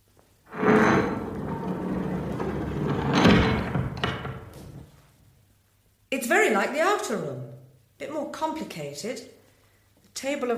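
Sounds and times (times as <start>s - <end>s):
heavy door with a radiation sign grinding open: 0.5s - 4.9s
speech: 6.2s - 9.4s, 10.2s - 10.5s.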